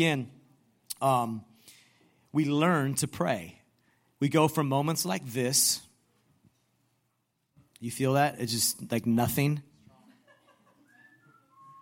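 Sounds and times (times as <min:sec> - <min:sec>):
speech: 0:00.0 - 0:00.4, 0:01.0 - 0:01.5, 0:02.3 - 0:03.6, 0:04.2 - 0:05.9, 0:07.8 - 0:09.7
laughter: 0:09.9 - 0:11.5
person whistling a short wavering tune: 0:10.8 - 0:11.8.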